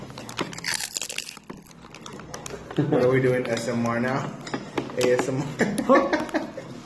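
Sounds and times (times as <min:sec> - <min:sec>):
crisp snack being bitten and chewed: 0:00.1 - 0:02.7
speech: 0:02.8 - 0:04.4, 0:05.0 - 0:06.4
laughter: 0:05.4 - 0:06.8.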